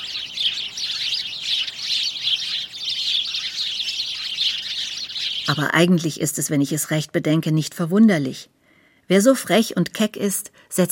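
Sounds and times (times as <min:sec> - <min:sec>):
sparrows chirping: 0:00.0 - 0:07.8
speech: 0:05.5 - 0:10.9.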